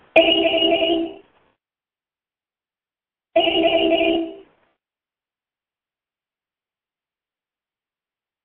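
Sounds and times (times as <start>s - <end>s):
telephone ringing on a callback: 0.2s - 1.2s, 3.4s - 4.4s.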